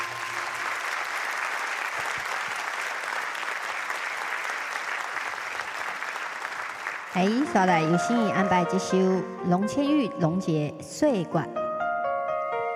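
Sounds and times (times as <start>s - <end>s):
audience applause: 0.0s - 7.9s
speech: 7.2s - 11.6s.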